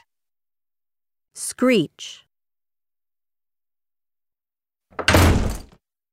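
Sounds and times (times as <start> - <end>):
speech: 1.6 - 2.3
door slamming: 4.9 - 5.8.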